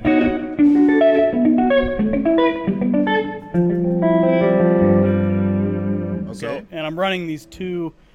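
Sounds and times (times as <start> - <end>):
clean electric guitar with slap-back echo playing single notes and chords: 0.0 - 6.4
speech: 6.9 - 8.1.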